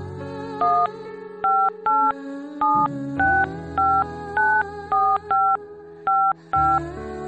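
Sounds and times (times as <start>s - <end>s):
dual-tone telephone keypad beeps: 0.6s - 0.9s, 1.4s - 6.8s
telephone dial tone: 1.4s - 5.6s, 6.1s - 6.8s.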